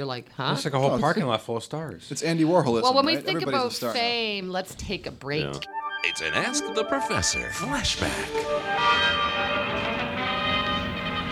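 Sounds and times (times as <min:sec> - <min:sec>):
speech: 0:00.0 - 0:09.9
several bells ringing in a sustained peal: 0:05.7 - 0:10.9.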